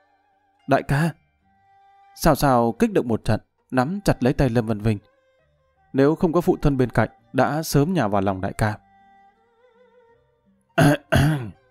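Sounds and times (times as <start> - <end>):
speech: 0.7 - 1.2, 2.2 - 5.1, 5.9 - 8.8, 10.8 - 11.3
feigned dry coughs: 10.8 - 11.6.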